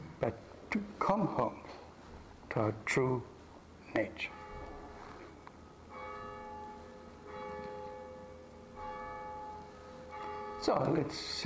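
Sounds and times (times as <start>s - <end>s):
speech: 0.2s - 1.8s, 2.6s - 3.3s, 4.0s - 4.4s, 10.6s - 11.4s
resonant bell struck with a rich humming tone: 4.2s - 11.4s.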